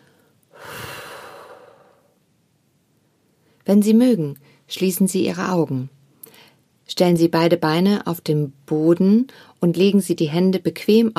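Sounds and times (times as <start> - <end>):
deep breath in and out during a meditation exercise: 0.0 - 2.2
speech: 3.7 - 6.0, 6.9 - 11.1.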